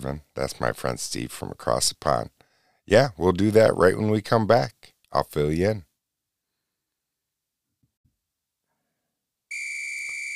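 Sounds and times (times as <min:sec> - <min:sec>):
speech: 0:00.0 - 0:05.9
whistle blown in a sharp sustained shrill blast: 0:09.5 - 0:10.3.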